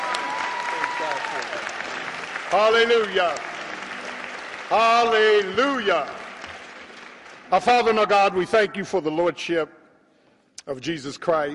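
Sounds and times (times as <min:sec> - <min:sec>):
audience applause: 0:00.0 - 0:08.2
speech: 0:01.0 - 0:03.5, 0:04.7 - 0:06.2, 0:07.5 - 0:09.8, 0:10.6 - 0:11.5.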